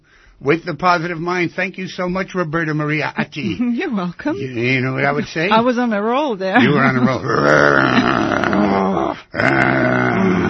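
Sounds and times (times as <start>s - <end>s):
speech: 0.4s - 8.2s
people growling like wolves: 7.0s - 10.4s.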